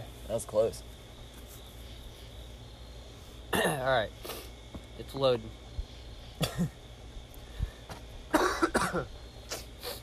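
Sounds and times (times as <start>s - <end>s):
speech: 0.3s - 1.0s, 3.6s - 4.4s, 5.0s - 5.6s, 6.5s - 6.8s, 8.9s - 9.2s
person coughing: 3.5s - 3.9s, 6.4s - 6.8s, 8.3s - 9.1s.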